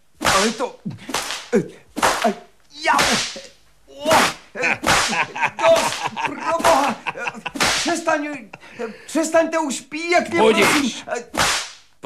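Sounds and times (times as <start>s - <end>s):
whip cracking: 0.2s - 3.5s, 4.1s - 8.1s, 10.6s - 11.9s
speech: 0.4s - 12.0s
laughter: 4.6s - 9.2s.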